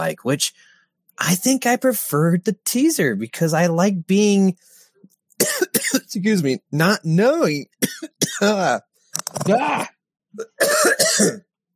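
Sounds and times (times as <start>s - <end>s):
speech: 0.0s - 4.7s, 5.4s - 11.5s
person coughing after choking on water: 5.4s - 6.1s, 7.8s - 8.8s, 9.4s - 11.5s.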